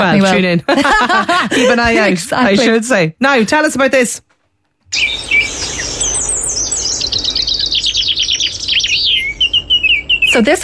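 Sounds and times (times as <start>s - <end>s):
speech: 0.0s - 4.3s, 4.9s - 5.4s, 10.4s - 10.6s
laughter: 0.2s - 2.6s
birds chirping and twittering: 4.8s - 10.6s.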